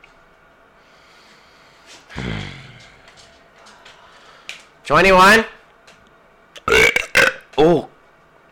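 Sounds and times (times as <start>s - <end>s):
person burping: 2.2s - 2.8s, 6.6s - 7.5s
speech: 4.9s - 5.6s.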